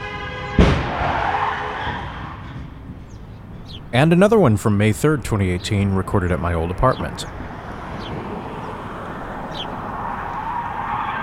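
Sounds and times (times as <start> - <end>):
tires squealing: 0.0 - 3.2, 6.8 - 11.2
car crash heavy impact: 0.4 - 2.9
speech: 3.9 - 7.5.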